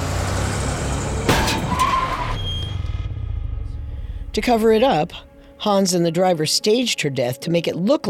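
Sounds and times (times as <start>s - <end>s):
car engine rumbling: 0.0s - 5.4s
car tire squeal while skidding: 0.9s - 3.1s
speech: 4.4s - 8.0s.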